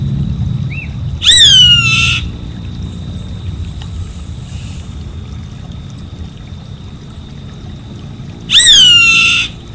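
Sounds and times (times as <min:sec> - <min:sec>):
low rumbling background noise: 0:00.0 - 0:09.6
Savanna hawk screaming: 0:01.2 - 0:02.3, 0:08.5 - 0:09.6.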